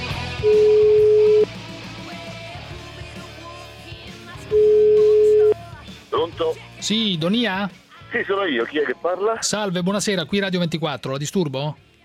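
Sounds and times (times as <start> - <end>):
telephone ringing tone on an outgoing call: 0.4 - 1.5, 4.5 - 5.5
speech: 6.5 - 11.9.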